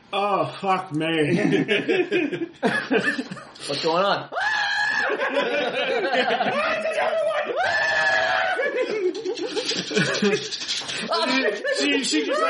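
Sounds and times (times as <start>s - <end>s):
speech: 0.1s - 4.4s, 5.1s - 7.9s, 9.8s - 12.4s
laughter: 1.3s - 3.6s, 4.9s - 7.3s, 8.5s - 12.4s
person screaming like a screaming goat: 4.3s - 5.2s, 7.2s - 8.8s.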